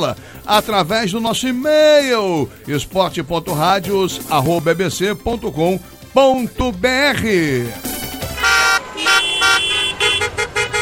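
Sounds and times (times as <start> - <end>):
speech: 0.0 - 7.9
car horn toots in a radio traffic jingle: 8.4 - 10.8.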